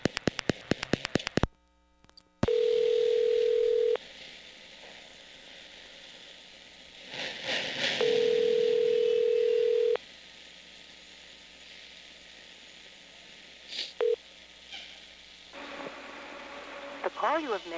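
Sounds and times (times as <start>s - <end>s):
faint telephone line hiss and crackle: 0.0s - 17.7s
telephone dial tone: 2.4s - 4.0s, 8.0s - 10.0s
speech: 17.2s - 17.7s.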